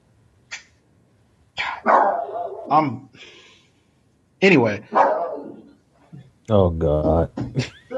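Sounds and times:
dog barking during a show recording: 1.6s - 2.8s, 4.9s - 5.7s
speech: 2.7s - 3.4s, 4.4s - 5.1s, 6.5s - 7.9s.

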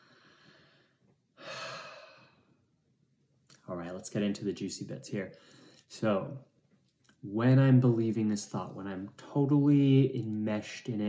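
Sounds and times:
single long airy deep inhalation: 0.0s - 2.7s, 5.3s - 5.9s
speech: 3.8s - 6.5s, 7.2s - 11.0s.

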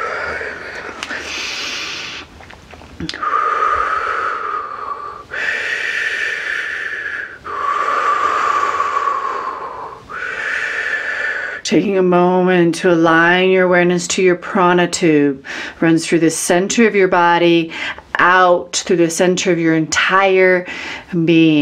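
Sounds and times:
loud rough hissy breathing: 0.0s - 2.3s, 3.1s - 11.6s, 20.7s - 21.1s
speech: 3.0s - 3.3s, 11.7s - 21.6s.

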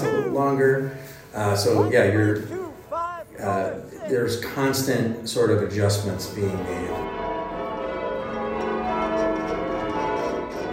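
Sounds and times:
speech: 0.4s - 2.7s, 3.4s - 7.2s
church bells ringing changes: 5.5s - 10.7s.

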